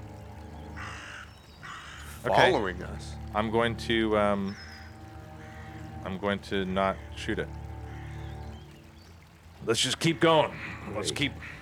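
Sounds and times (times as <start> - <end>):
raven giving a harsh raspy caw: 0.8 - 2.8, 4.5 - 6.2, 6.8 - 8.6, 10.4 - 11.6
speech: 2.2 - 4.7, 6.0 - 7.6, 9.6 - 11.6.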